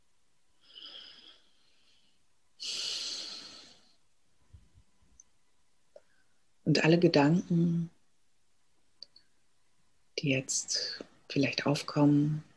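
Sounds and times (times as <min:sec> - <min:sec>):
deep breaths during a guided relaxation exercise: 0:00.6 - 0:04.0
speech: 0:06.7 - 0:08.0, 0:10.2 - 0:12.5.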